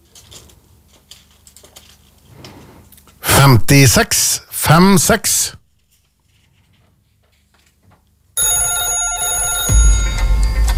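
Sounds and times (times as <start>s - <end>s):
speech: 3.4s - 5.6s
telephone ringing in a radio studio: 8.4s - 10.6s.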